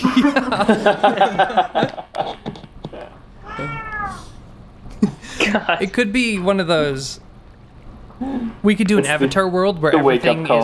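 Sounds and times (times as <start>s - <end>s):
laughter: 0.0s - 3.1s, 4.9s - 5.9s
speech: 0.2s - 2.1s, 5.0s - 7.2s, 8.2s - 10.6s
cat yowling: 3.4s - 4.4s.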